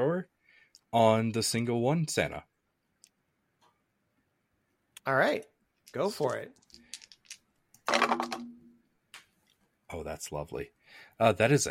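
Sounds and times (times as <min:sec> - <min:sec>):
speech: 0:00.0 - 0:00.3, 0:00.9 - 0:02.5, 0:05.0 - 0:06.6, 0:09.9 - 0:11.6
dice clattering across a hard tabletop: 0:05.9 - 0:08.6.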